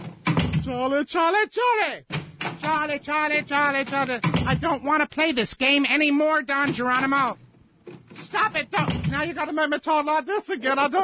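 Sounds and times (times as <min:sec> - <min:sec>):
door rattling knock: 0:00.0 - 0:00.8, 0:02.1 - 0:04.9, 0:06.6 - 0:09.4
speech: 0:00.7 - 0:07.4, 0:08.3 - 0:11.0.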